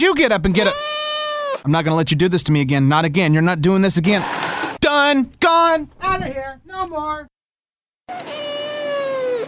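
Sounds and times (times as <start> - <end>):
speech: 0.0 - 0.9, 1.6 - 4.4, 5.0 - 7.3, 8.1 - 8.6
cat meowing: 0.6 - 1.6, 8.1 - 9.4.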